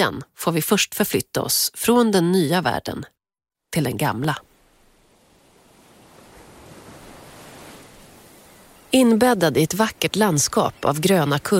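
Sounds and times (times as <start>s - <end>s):
speech: 0.0s - 4.5s, 8.9s - 11.5s
ocean surf rolling onto beach: 4.4s - 10.9s.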